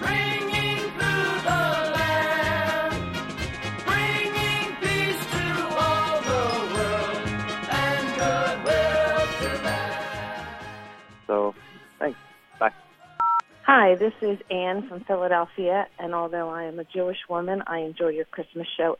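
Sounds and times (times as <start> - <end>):
full loud song with singing voice: 0.0 - 13.6
jingling Christmas bells: 5.0 - 10.3
speech: 13.9 - 18.9.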